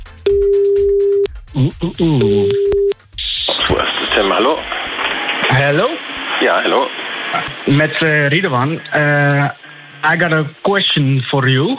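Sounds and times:
telephone ringing tone while a call is being placed: 0.3 - 1.3, 2.2 - 2.9
speech: 1.6 - 2.8, 6.6 - 11.7
bright electronic noise: 1.6 - 9.5.

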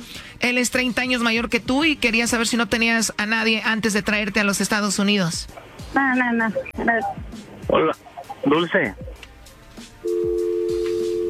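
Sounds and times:
speech: 0.4 - 9.1
telephone line tone as a call is hung up and redialed: 10.0 - 11.2.

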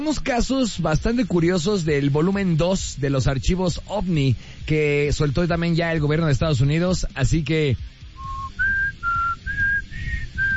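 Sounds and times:
speech: 0.0 - 8.0
low rumbling background: 0.0 - 10.5
person whistling a tune: 8.2 - 10.5.

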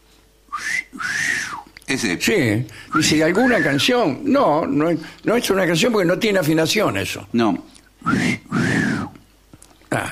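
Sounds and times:
two-part wolf whistle at a passing woman: 0.5 - 1.7, 2.9 - 3.9, 8.0 - 9.2
speech: 1.9 - 8.2.

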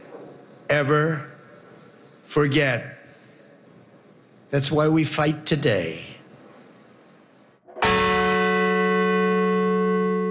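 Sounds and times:
speech: 0.7 - 1.3, 2.3 - 3.0, 4.5 - 6.1
large memorial bell tolling outside Shanksville Pennsylvania: 7.7 - 10.2.

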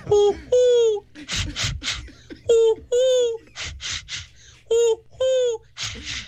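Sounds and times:
person imitating drawn-out cooing dove calls: 0.0 - 1.1, 2.5 - 3.4, 4.7 - 6.2
laughter: 0.0 - 6.2.

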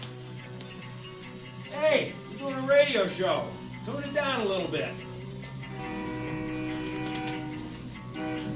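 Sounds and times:
speech: 2.0 - 5.1
passing train horn blaring in one long steady chord: 5.6 - 8.5.

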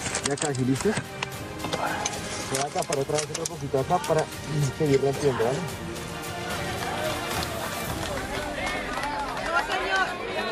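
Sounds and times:
speech: 0.3 - 1.2, 2.5 - 6.0
many voices calling out and chattering: 6.1 - 10.5
community applauding during a rubble rescue: 6.3 - 10.5.

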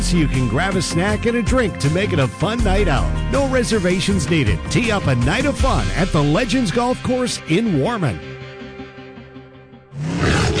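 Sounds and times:
speech: 0.0 - 8.3
tiger roaring: 9.9 - 10.5.

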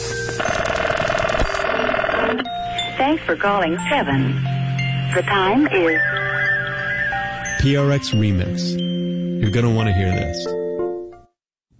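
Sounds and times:
noisy background: 0.0 - 10.2
1970s telephone ringing with electronic trill: 0.1 - 7.7
speech: 3.0 - 4.5, 5.2 - 6.1, 7.6 - 10.6.

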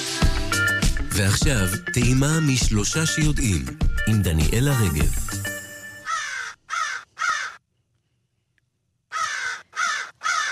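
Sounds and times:
speech: 1.2 - 5.4
fan-tailed raven calls in the Dead Sea area of Israel: 6.0 - 7.6, 9.1 - 10.5.

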